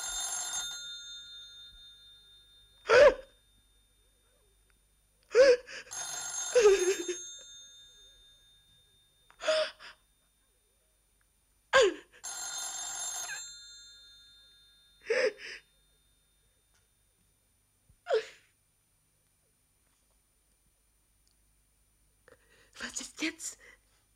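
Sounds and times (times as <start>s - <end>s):
telephone bell ringing: 0.0s - 4.4s, 5.4s - 10.2s, 12.1s - 16.4s.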